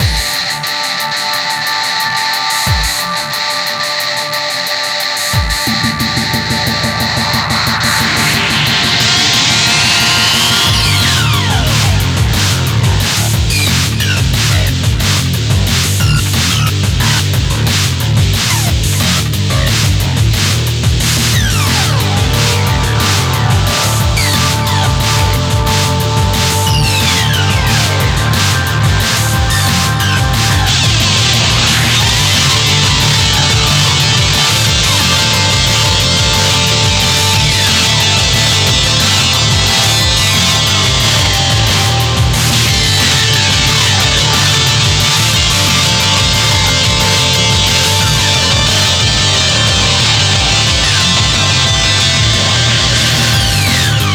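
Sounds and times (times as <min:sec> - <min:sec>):
eight guitars playing: 0:00.0 - 0:54.1.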